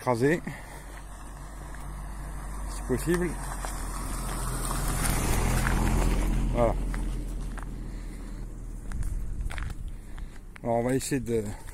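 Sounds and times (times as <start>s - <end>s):
speech: 0.0s - 0.6s, 2.9s - 3.6s, 6.6s - 6.8s, 10.6s - 11.6s
footsteps of a person walking calmly outdoors near a horse stud farm: 0.0s - 11.7s
steady noise: 0.0s - 11.7s.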